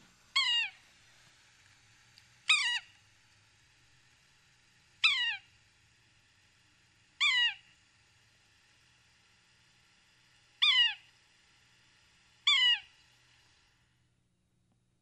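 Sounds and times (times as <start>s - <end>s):
Yellow-bellied Sapsucker giving mewing calls: 0.3s - 0.8s, 2.5s - 2.9s, 5.0s - 5.5s, 7.2s - 7.8s, 10.6s - 11.1s, 12.4s - 13.0s.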